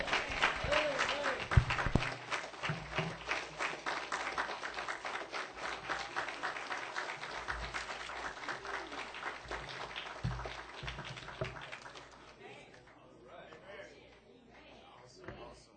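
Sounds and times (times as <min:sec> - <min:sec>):
chapel audience applause after a sermon at a morning service: 0:00.0 - 0:12.6.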